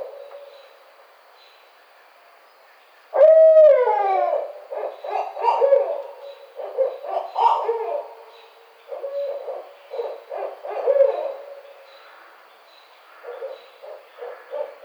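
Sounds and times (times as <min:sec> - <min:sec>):
barred owl hooting: 0:03.1 - 0:11.9, 0:13.2 - 0:14.8.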